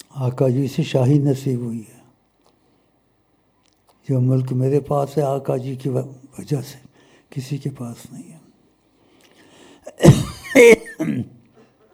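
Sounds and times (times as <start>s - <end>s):
speech: 0.2s - 2.0s, 4.1s - 8.4s, 10.0s - 11.4s
person coughing: 9.9s - 11.3s.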